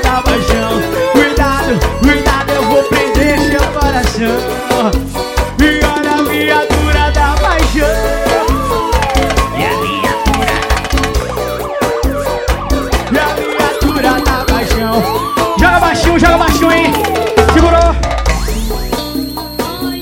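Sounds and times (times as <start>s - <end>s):
wailing siren sound effect: 0.0s - 3.5s, 7.8s - 20.0s
loud dense music with a heavy pounding bass beat: 0.0s - 20.0s.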